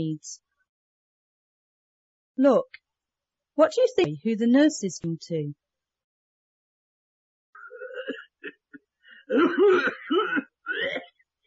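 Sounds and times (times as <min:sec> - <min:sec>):
speech: 0:00.0 - 0:00.4, 0:02.4 - 0:02.8, 0:03.6 - 0:05.6, 0:09.3 - 0:11.0
man coughing and clearing his throat: 0:07.7 - 0:11.1.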